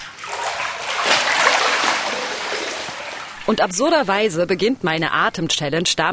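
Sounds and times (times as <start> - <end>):
water splashing and churning as someone moves beneath the surface: 0.0 - 4.0
speech: 3.5 - 6.1.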